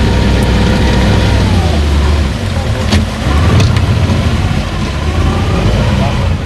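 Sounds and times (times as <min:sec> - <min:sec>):
boat motor running on the bayou: 0:00.0 - 0:06.4
knocks and clatters: 0:02.5 - 0:05.0.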